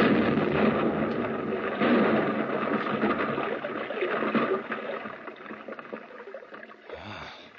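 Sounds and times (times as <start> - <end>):
blasting charge fired by a wired exploder exploding in a tunnel: 0.0 - 3.7.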